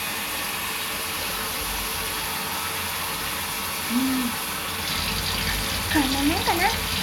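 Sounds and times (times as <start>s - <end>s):
tap water running to rinse off soap lather: 0.0s - 7.0s
speech: 6.0s - 7.0s.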